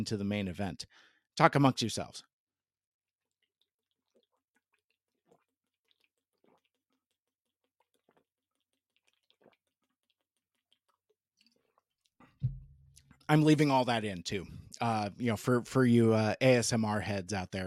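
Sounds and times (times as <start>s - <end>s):
speech: 0.0s - 2.3s, 13.3s - 17.6s
person drinking water and swallowing sips: 3.3s - 13.2s
low thump: 12.4s - 12.9s.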